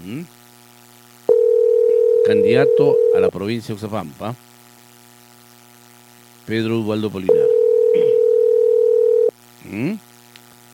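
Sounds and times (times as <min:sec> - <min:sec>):
speech: 0:00.1 - 0:00.4, 0:02.3 - 0:04.5, 0:06.5 - 0:08.0, 0:09.7 - 0:10.1
telephone line ringing tone, call unanswered: 0:01.3 - 0:03.3, 0:07.3 - 0:09.3.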